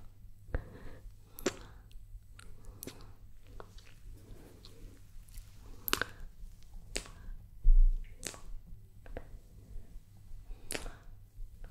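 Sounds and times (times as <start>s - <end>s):
low steady hum: 0.0s - 11.7s
wet mouth sounds with sharp clicks and smacks: 1.4s - 4.0s, 4.6s - 6.2s, 6.8s - 7.3s, 8.0s - 9.3s, 10.6s - 11.1s.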